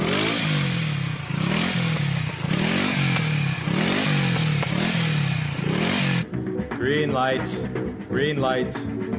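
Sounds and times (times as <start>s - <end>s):
motorcycle engine sputtering and stalling: 0.0s - 6.4s
speech: 7.1s - 9.0s.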